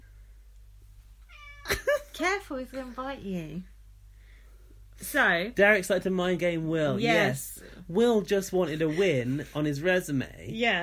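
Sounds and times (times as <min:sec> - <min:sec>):
steady low electrical hum: 0:00.0 - 0:10.8
cat meowing: 0:01.3 - 0:01.7
speech: 0:02.2 - 0:03.7, 0:05.0 - 0:10.8.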